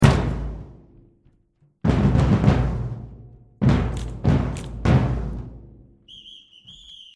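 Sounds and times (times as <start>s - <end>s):
drum solo: 0.0s - 0.8s, 1.8s - 5.7s.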